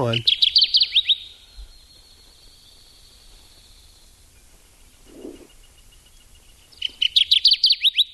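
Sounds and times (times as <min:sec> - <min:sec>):
speech: 0:00.0 - 0:00.4
Kirtland's Warbler singing: 0:00.0 - 0:08.1.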